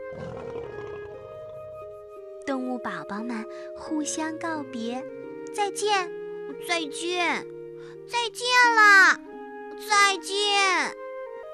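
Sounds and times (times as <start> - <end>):
little monkeys softly imitating a lion monkey's call with a low roar-like growl: 0.0 - 1.9
speech: 2.5 - 11.0.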